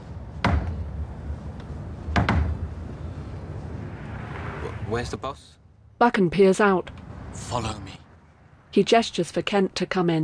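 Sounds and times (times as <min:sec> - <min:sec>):
knocks on a door: 0:00.4 - 0:00.8, 0:02.1 - 0:02.6
speech: 0:04.9 - 0:08.0, 0:08.7 - 0:10.2.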